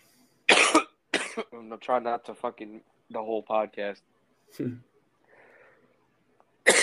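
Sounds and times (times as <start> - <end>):
person coughing: 0.5 - 1.5, 6.6 - 6.8
speech: 1.4 - 4.9.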